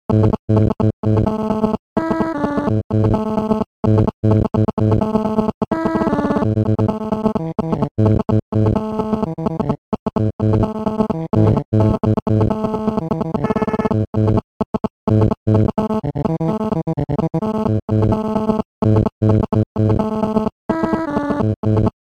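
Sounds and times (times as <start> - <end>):
phone signal interference noise ringtone remix: 0.2 - 21.9.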